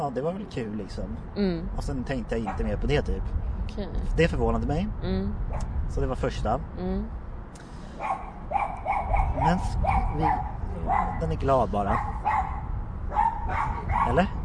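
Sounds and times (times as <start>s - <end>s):
speech: 0.0s - 8.3s, 9.4s - 12.6s, 13.5s - 14.4s
dog barking in short yappy bursts: 2.4s - 2.8s, 8.0s - 14.3s.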